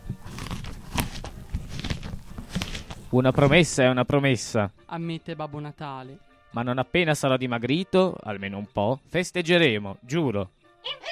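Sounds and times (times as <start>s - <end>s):
wet chewing of apple: 0.0s - 3.1s
crunching bites into a red apple: 0.0s - 3.5s
speech: 3.1s - 11.0s.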